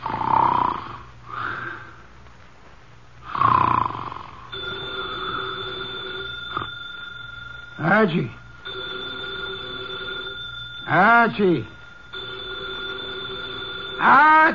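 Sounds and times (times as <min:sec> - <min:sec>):
person snoring loudly through the nose: 0:00.0 - 0:01.9, 0:03.2 - 0:06.7
old telephone bell ringing: 0:04.5 - 0:14.5
speech: 0:08.0 - 0:08.4, 0:10.9 - 0:11.8, 0:14.0 - 0:14.5.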